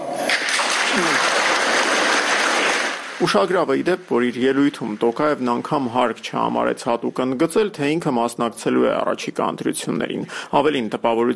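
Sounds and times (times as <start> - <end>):
parliament deputies applauding: 0.3 - 5.9
speech: 1.0 - 1.3, 3.2 - 11.3.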